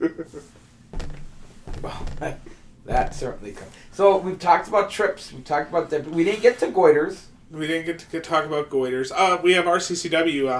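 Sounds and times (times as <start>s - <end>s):
knock on a wooden surface: 1.0s - 3.6s
speech: 1.9s - 10.5s.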